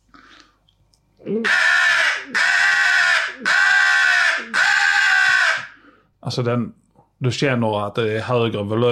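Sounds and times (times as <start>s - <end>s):
speech: 1.2s - 1.6s, 6.4s - 8.9s
voice imitating an aggressive crow cawing: 1.2s - 5.8s.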